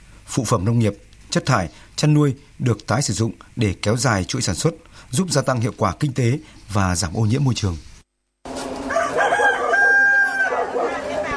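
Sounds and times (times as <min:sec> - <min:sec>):
speech: 0:00.3 - 0:07.9
chickens clucking: 0:08.5 - 0:11.3
rooster crowing: 0:08.6 - 0:11.3.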